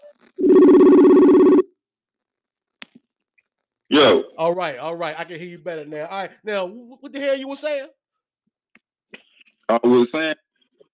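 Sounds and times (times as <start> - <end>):
telephone ringing while a call is placed back: 0.0 - 1.6
speech: 4.0 - 8.0, 9.7 - 10.4.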